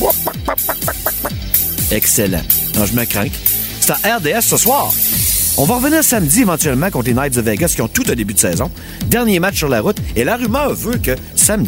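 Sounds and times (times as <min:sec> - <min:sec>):
chicken clucking: 0:00.0 - 0:01.3
speech: 0:01.9 - 0:11.6.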